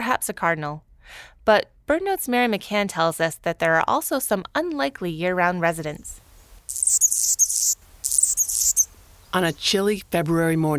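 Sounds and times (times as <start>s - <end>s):
speech: 0.1s - 7.4s, 9.3s - 10.7s
male Anna's hummingbird singing on a chilly February morning near Seattle: 6.7s - 10.7s.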